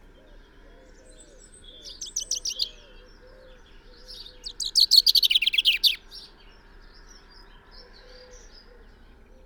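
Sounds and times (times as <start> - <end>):
common chaffinch Fringilla coelebs song: 1.6 - 2.9, 4.1 - 6.2.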